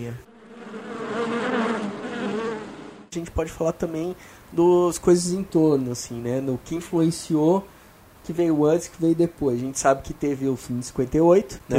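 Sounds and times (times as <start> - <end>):
speech: 0.0 - 0.3, 3.1 - 11.7
fly buzzing: 0.2 - 3.1.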